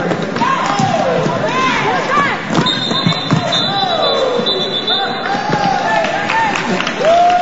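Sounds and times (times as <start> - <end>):
thumps and squeaks of roller derby skating play: 0.0 - 6.2
crowd cheering and shouting at a roller derby bout: 0.3 - 7.4
sustained high whistle: 2.6 - 5.4.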